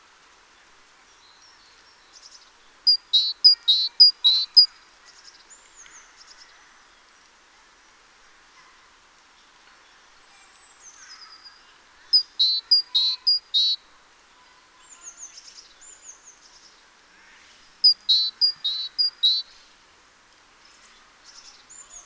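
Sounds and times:
great tit Parus major calls: 0:02.9 - 0:04.7, 0:12.1 - 0:13.8, 0:17.8 - 0:19.5.

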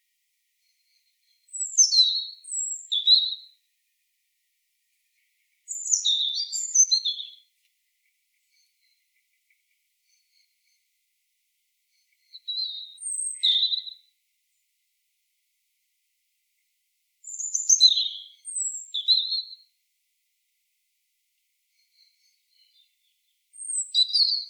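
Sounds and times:
European robin Erithacus rubecula singing: 0:00.6 - 0:03.6, 0:05.6 - 0:07.5, 0:11.9 - 0:14.1, 0:17.2 - 0:19.7, 0:21.7 - 0:24.4.

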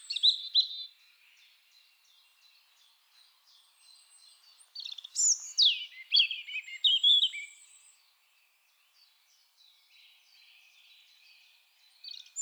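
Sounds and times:
European robin singing: 0:00.0 - 0:00.9, 0:04.0 - 0:07.7, 0:12.1 - 0:12.3.

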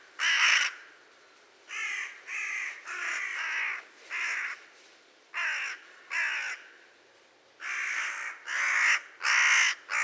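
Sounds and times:
carrion crow cawing, Corvus corone: 0:00.2 - 0:00.8, 0:01.7 - 0:04.6, 0:05.4 - 0:06.6, 0:07.6 - 0:10.0.

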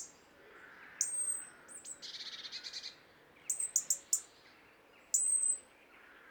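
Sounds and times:
European robin Erithacus rubecula calling: 0:00.0 - 0:04.3, 0:05.1 - 0:05.6.

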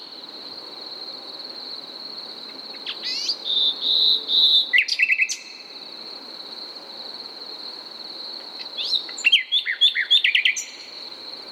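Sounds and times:
common nightingale Luscinia megarhynchos song: 0:02.7 - 0:05.7, 0:08.6 - 0:11.0.

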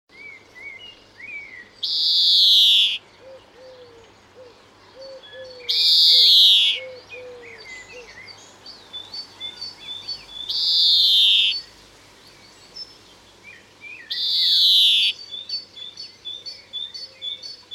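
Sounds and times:
low piping bird calling: 0:01.3 - 0:08.3, 0:09.0 - 0:11.7, 0:14.0 - 0:15.7
speech: 0:01.8 - 0:02.2.

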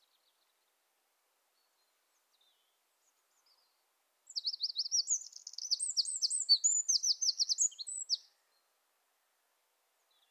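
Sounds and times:
Eurasian wren Troglodytes troglodytes singing rapid ringing trills: 0:04.3 - 0:08.2.

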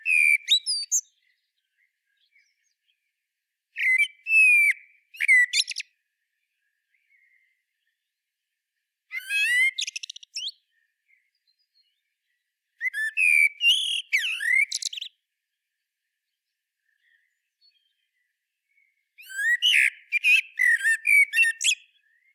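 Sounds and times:
common blackbird song: 0:00.0 - 0:03.0, 0:03.8 - 0:06.0, 0:09.1 - 0:15.2, 0:16.8 - 0:22.3.

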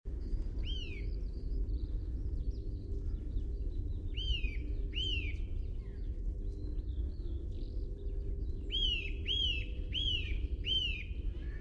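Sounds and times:
low rumble: 0:00.1 - 0:11.5
Eurasian nuthatch Sitta europaea calling with rising-falling whistled notes: 0:00.6 - 0:01.1, 0:04.1 - 0:05.4, 0:08.7 - 0:11.5.

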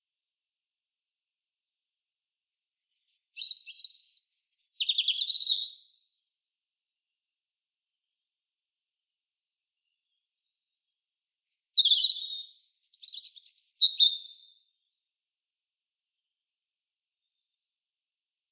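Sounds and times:
European robin singing: 0:02.5 - 0:06.0, 0:11.3 - 0:14.7.

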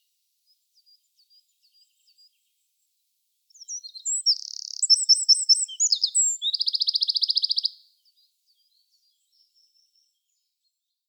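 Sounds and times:
Eurasian wren Troglodytes troglodytes singing: 0:03.5 - 0:07.8.

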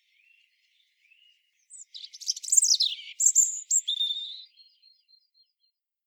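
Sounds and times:
European robin giving high warbling phrase and thin whistled notes: 0:01.7 - 0:04.6.

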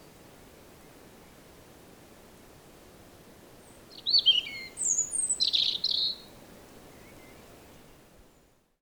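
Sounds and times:
faint steady hiss: 0:00.0 - 0:08.8
European robin singing, Erithacus rubecula: 0:03.6 - 0:06.3.

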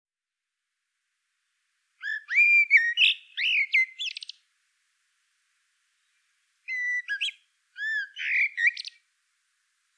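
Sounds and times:
common blackbird singing, Turdus merula: 0:02.0 - 0:04.4, 0:06.7 - 0:09.0.

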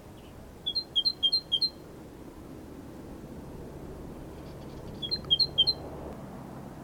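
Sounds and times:
low steady hiss: 0:00.0 - 0:06.8
great tit Parus major calling: 0:00.2 - 0:01.8, 0:04.5 - 0:05.8.

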